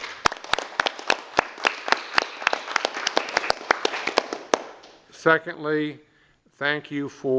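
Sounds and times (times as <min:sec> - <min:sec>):
meeting audience applause thanking interpreters: 0:00.0 - 0:04.9
speech: 0:05.2 - 0:07.3.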